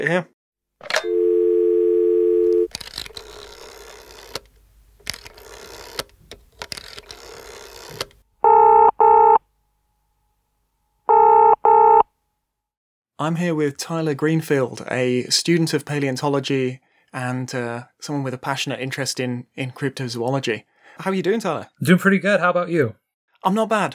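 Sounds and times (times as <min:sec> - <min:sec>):
speech: 0:00.0 - 0:01.1, 0:13.2 - 0:23.9
telephone dial tone: 0:00.9 - 0:04.4, 0:06.8 - 0:09.4, 0:11.1 - 0:12.0
clattery telephone dialing noise: 0:02.7 - 0:08.2.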